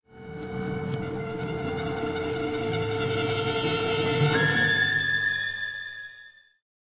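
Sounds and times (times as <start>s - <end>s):
brass instruments: 0.2s - 6.0s.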